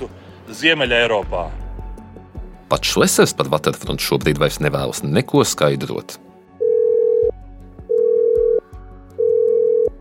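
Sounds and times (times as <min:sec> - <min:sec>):
speech: 0:00.0 - 0:01.6, 0:02.7 - 0:06.3
phone ringback tone on a phone line: 0:06.6 - 0:09.9.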